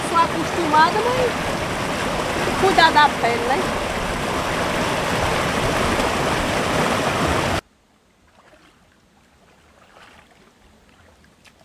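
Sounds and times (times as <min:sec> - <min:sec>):
waterfall water rushing: 0:00.0 - 0:07.6
speech: 0:00.4 - 0:01.6, 0:02.6 - 0:03.9.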